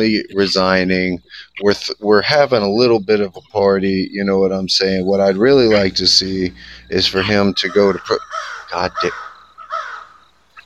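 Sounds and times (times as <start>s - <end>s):
speech: 0.0s - 9.2s
crows cawing: 5.7s - 10.6s.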